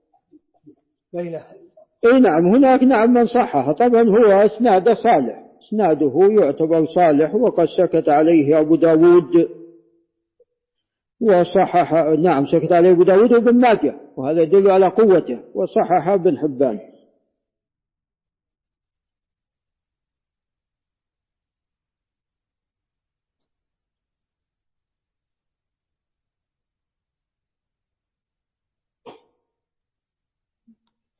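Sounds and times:
speech: 0:01.1 - 0:09.6, 0:11.2 - 0:16.9
person sneezing: 0:29.1 - 0:29.4.

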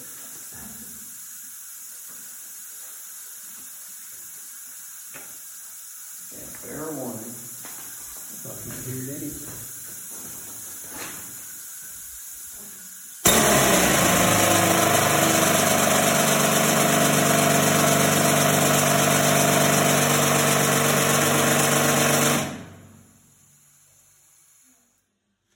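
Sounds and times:
rock drill running without touching the rock: 0:13.2 - 0:22.9.

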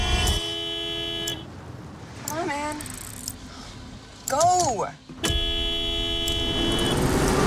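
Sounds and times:
car horn blaring: 0:00.1 - 0:01.5, 0:05.1 - 0:07.3
speech: 0:04.7 - 0:05.2.

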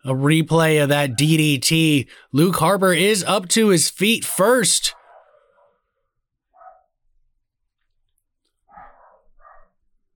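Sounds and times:
speech: 0:00.0 - 0:05.0
dog barking faintly: 0:04.9 - 0:05.9, 0:06.5 - 0:07.0, 0:08.6 - 0:09.9.

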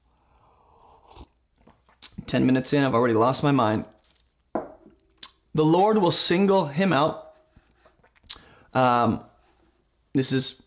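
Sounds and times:
person sipping a drink: 0:00.0 - 0:02.3, 0:07.5 - 0:08.7
soft mouth and slurping noise: 0:00.2 - 0:02.3, 0:07.6 - 0:08.6
gulp: 0:00.7 - 0:02.3, 0:07.7 - 0:08.7
speech: 0:02.3 - 0:04.0, 0:05.6 - 0:07.2, 0:08.7 - 0:09.3, 0:10.1 - 0:10.6.

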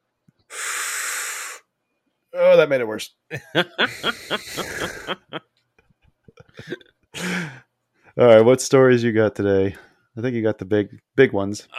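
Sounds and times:
single deep loud breath: 0:00.5 - 0:01.7, 0:03.9 - 0:05.1, 0:06.6 - 0:08.2
speech: 0:02.3 - 0:05.5, 0:06.4 - 0:07.6, 0:08.2 - 0:11.7
laughter: 0:03.3 - 0:05.4.

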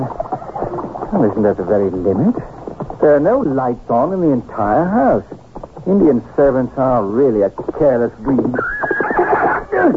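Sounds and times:
wild horse whinnying: 0:00.0 - 0:01.2, 0:08.4 - 0:09.9
speech: 0:01.1 - 0:08.7.

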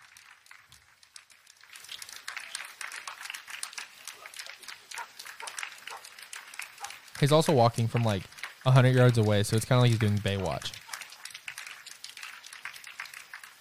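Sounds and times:
sparse weak clapping from an audience: 0:00.0 - 0:13.5
speech: 0:07.2 - 0:10.8.

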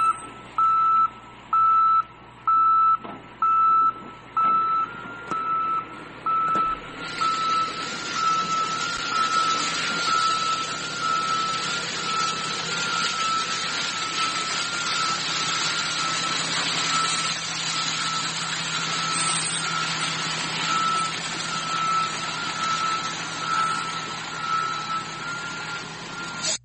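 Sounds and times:
garbage truck reversing beeps: 0:00.0 - 0:26.6
garbage truck heavy engine rumble: 0:01.3 - 0:26.6
garbage truck hissing mechanical noise: 0:03.9 - 0:26.6.

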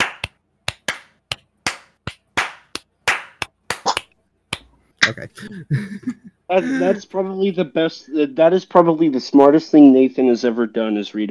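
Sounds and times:
slow hand claps: 0:00.0 - 0:04.7
laughter: 0:05.0 - 0:07.1
speech: 0:05.1 - 0:11.2.

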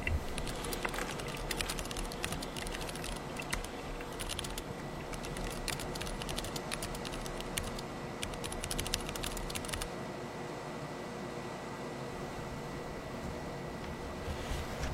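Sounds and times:
rapid keyboard typing in a late-night coffee bar: 0:00.0 - 0:09.9
low hum of room noise in a late-night coffee bar: 0:00.0 - 0:14.9.

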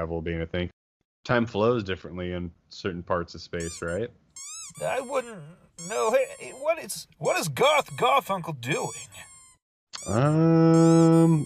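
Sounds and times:
speech: 0:00.0 - 0:09.3, 0:10.0 - 0:11.4
squeaky toy squealing: 0:03.6 - 0:11.4.

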